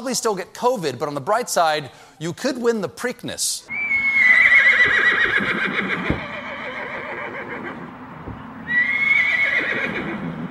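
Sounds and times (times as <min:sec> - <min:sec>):
speech: 0:00.0 - 0:04.0
horse neighing: 0:03.7 - 0:07.9, 0:08.7 - 0:10.4.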